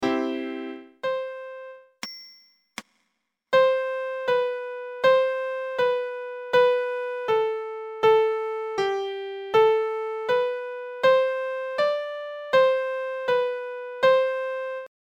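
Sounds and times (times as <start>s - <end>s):
piano: 0.0s - 2.0s, 3.6s - 14.9s.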